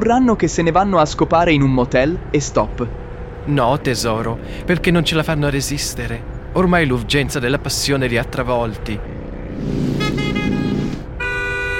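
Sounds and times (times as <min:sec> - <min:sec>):
speech: 0:00.1 - 0:09.9
low rumble of road noise: 0:00.1 - 0:11.7
car horn honking at someone overtaking: 0:09.6 - 0:11.7.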